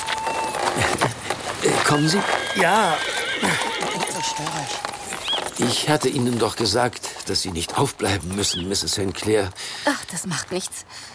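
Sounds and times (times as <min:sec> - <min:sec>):
horse neighing: 0:00.0 - 0:05.7
faint hoof clops: 0:00.0 - 0:09.4
speech: 0:01.9 - 0:04.9, 0:05.6 - 0:11.1.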